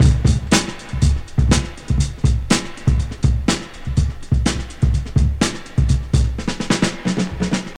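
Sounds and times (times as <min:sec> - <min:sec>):
drum groove with kick tuned to F: 0:00.0 - 0:07.7.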